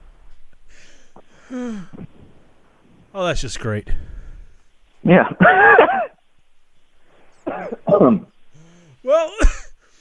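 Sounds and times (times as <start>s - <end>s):
speech: 1.5s - 2.1s, 3.1s - 4.2s, 5.0s - 6.1s, 8.0s - 8.3s, 9.0s - 9.5s
person coughing harshly: 5.4s - 6.1s, 7.4s - 8.3s, 9.3s - 9.8s.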